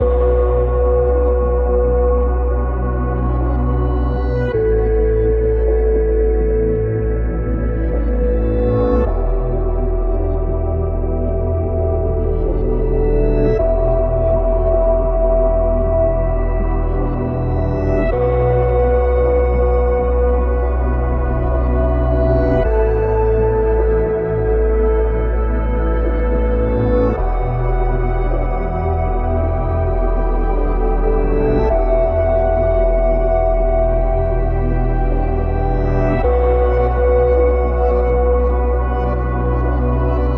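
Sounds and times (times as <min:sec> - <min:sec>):
granular ambient drone: 0:00.0 - 0:40.3.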